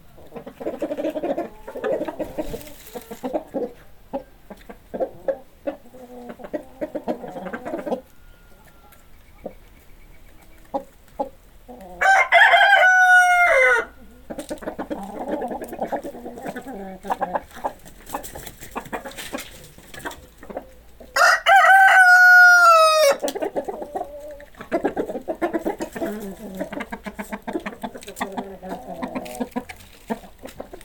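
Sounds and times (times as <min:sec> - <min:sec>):
flock of chickens clucking: 0:00.0 - 0:30.8
rooster's loud harsh crow: 0:12.0 - 0:14.0, 0:21.2 - 0:23.2.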